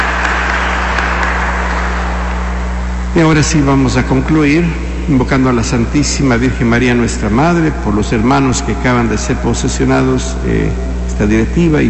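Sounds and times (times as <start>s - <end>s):
crowd applauding newly installed board members: 0.0s - 3.0s
low electrical hum: 0.0s - 11.8s
speech: 3.2s - 11.8s.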